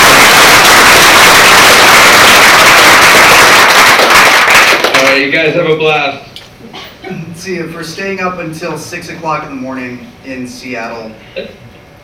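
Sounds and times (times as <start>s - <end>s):
audience applause after a lightning talk: 0.0s - 5.3s
speech: 5.3s - 6.3s, 7.4s - 11.7s.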